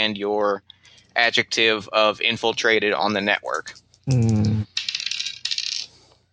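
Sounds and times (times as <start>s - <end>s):
speech: 0.0s - 4.5s
push dice rattling on a hard surface in a tabletop role-playing game: 4.7s - 6.0s.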